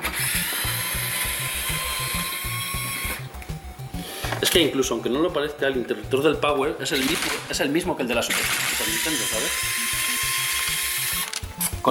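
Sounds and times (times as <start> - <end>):
electric screwdriver driving screws into a Famicom console case: 0.0 - 3.3, 8.3 - 11.8
speech: 4.4 - 10.0.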